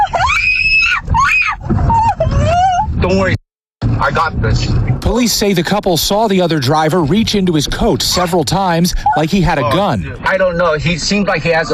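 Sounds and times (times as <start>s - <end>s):
woman screaming from the passenger seat of a car: 0.0s - 2.9s
low rumble: 1.6s - 9.2s
speech: 4.2s - 11.7s.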